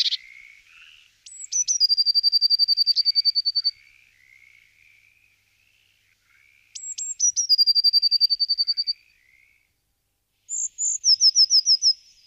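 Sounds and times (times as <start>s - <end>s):
Eurasian blue tit song, Parus caeruleus, high notes and rapid trill: 0.0s - 4.4s, 6.5s - 9.6s, 10.5s - 12.2s.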